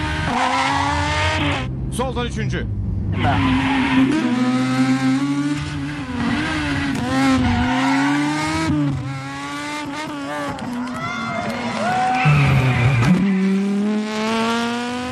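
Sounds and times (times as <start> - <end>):
rally car engine roaring and revving: 0.0 - 15.1
rally car tires squealing: 0.2 - 1.7, 3.1 - 4.7, 5.5 - 9.1, 10.0 - 14.0
speech: 2.0 - 4.6.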